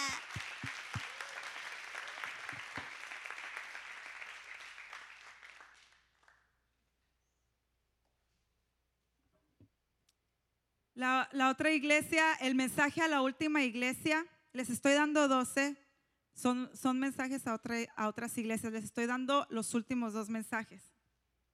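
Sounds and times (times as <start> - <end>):
church congregation applauding: 0.0 - 6.6
speech: 11.0 - 15.8, 16.4 - 20.9.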